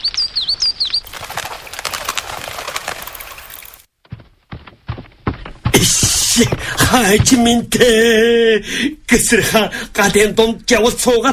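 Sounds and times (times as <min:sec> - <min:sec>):
bird chirping: 0:00.0 - 0:01.6
bird wings flapping as it flies off: 0:01.0 - 0:03.9
speech: 0:05.8 - 0:11.3.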